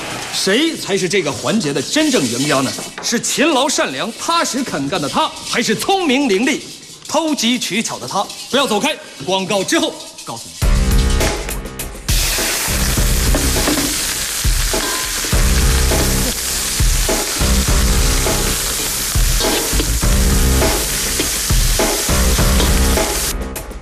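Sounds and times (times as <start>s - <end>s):
speech: 0.4s - 10.7s
stirring and tossing strokes in an iron wok: 1.0s - 10.8s, 14.5s - 23.3s
stir-frying sizzle in an iron wok: 12.1s - 23.3s.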